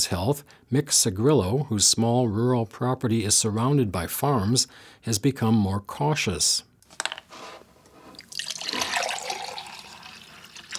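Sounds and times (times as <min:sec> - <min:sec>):
speech: 0:00.0 - 0:06.7
water pouring from a five-gallon drinking-water jug: 0:08.1 - 0:10.7.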